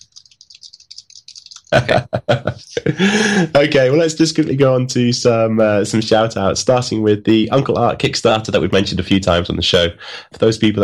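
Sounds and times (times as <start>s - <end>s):
typing on a computer keyboard: 0.0s - 1.8s
laughter: 1.5s - 3.8s
speech: 1.7s - 10.8s.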